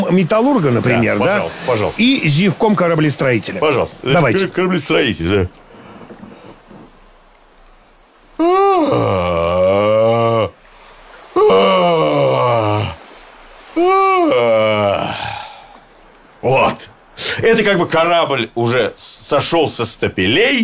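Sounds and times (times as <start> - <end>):
speech: 0.1 - 5.6, 17.6 - 20.6
man imitating a shipbuilder's yawn: 8.4 - 10.6, 11.3 - 13.0, 13.8 - 15.8.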